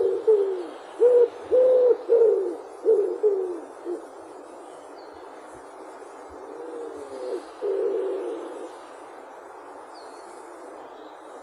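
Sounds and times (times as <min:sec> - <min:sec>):
common wood pigeon deep muffled coos: 0:00.0 - 0:04.1, 0:05.9 - 0:08.8
faint steady hiss: 0:00.0 - 0:11.4.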